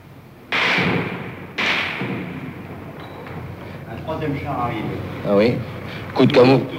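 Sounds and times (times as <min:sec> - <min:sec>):
machine-gun bullets striking a wall: 0:00.5 - 0:03.4
speech: 0:04.0 - 0:06.7.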